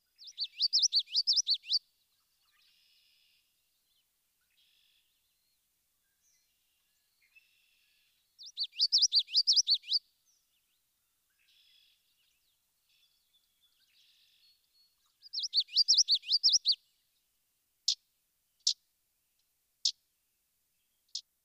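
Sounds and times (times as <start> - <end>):
common yellowthroat singing: 0.0 - 16.9.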